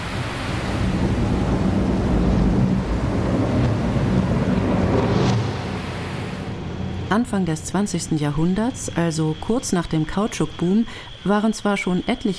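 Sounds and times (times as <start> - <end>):
deep rumbling thunder in a tropical rainstorm in the Amazon rainforest: 0.0 - 7.1
heavy rain and wind in a tropical rainstorm in the Amazon rainforest: 0.0 - 7.3
speech: 7.2 - 12.3.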